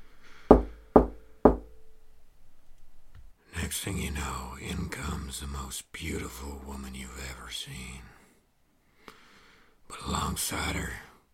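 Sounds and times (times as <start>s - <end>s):
firm knocking on a wooden door: 0.5s - 1.6s
speech: 3.7s - 8.2s, 10.1s - 11.1s.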